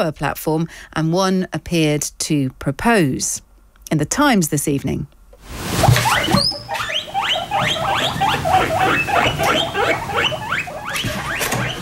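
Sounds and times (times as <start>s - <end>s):
speech: 0.0s - 6.8s
guinea pigs squeaking: 5.8s - 11.8s.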